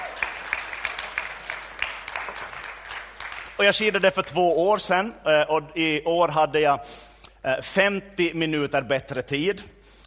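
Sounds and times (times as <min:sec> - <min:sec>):
crowd applauding: 0:00.0 - 0:03.7
speech: 0:03.6 - 0:09.8.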